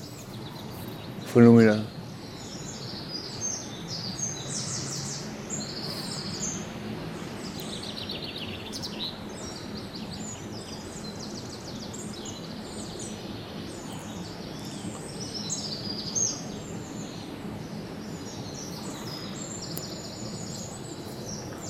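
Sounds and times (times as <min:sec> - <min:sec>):
Eurasian wren singing in rapid high-pitched trills and chirps: 0:00.0 - 0:21.6
steady outdoor hiss: 0:00.0 - 0:21.6
speech: 0:01.3 - 0:01.9.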